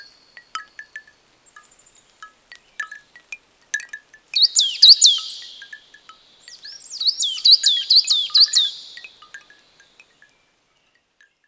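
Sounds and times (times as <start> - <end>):
soft ticking: 0.4 - 9.6
bright high down-slurred whistled bird song in woodland: 4.4 - 9.2.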